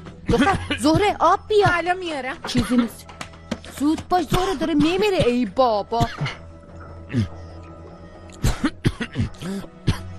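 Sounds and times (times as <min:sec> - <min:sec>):
choking coughs after something went down the wrong way: 0:00.2 - 0:03.1, 0:04.4 - 0:07.6, 0:08.3 - 0:10.1
speech: 0:00.3 - 0:03.1, 0:03.8 - 0:06.4, 0:07.1 - 0:07.4.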